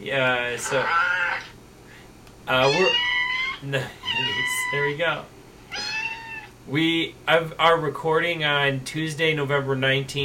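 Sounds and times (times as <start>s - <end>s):
speech: 0.0s - 1.1s, 2.5s - 5.4s, 6.6s - 10.2s
cat meows played from a soundboard: 0.6s - 1.5s, 2.6s - 4.9s, 5.7s - 6.5s.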